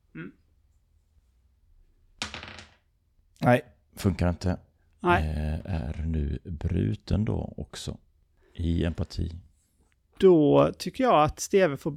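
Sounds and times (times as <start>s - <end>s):
speech: 0.2s - 0.4s, 3.4s - 9.5s, 10.2s - 11.9s
dice rolled across a hard surface: 2.2s - 2.9s.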